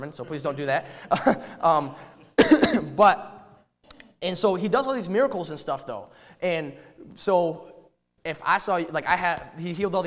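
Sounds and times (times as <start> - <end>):
speech: 0.0 - 3.4, 4.2 - 10.0
preacher coughing during a sermon: 2.4 - 3.2.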